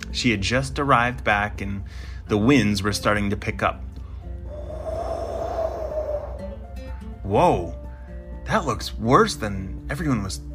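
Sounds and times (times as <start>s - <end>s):
speech: 0.2s - 3.9s, 7.3s - 7.8s, 8.5s - 10.5s
long drawn-out voiced breathy yawn: 4.4s - 6.6s.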